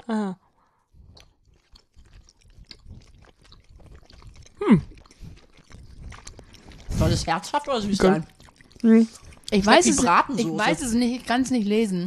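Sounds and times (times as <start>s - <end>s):
speech: 0.1s - 0.4s, 4.6s - 4.9s, 7.0s - 12.0s
person biting heartily into food and chewing wetly with crunchy bites: 0.4s - 11.4s.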